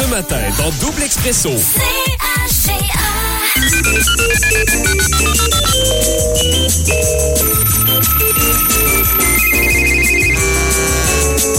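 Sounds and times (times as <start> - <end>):
speech: 0.1 - 8.6
busy bouncy electronic tune with steady bass beat: 3.6 - 10.8
telephone ringing on an outgoing call: 3.6 - 11.4.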